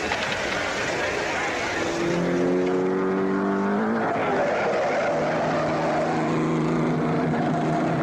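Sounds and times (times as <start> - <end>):
crowd rumble at race track: 0.0 - 8.0
race car engine roaring around track: 0.0 - 8.0
race track noise: 0.0 - 8.0.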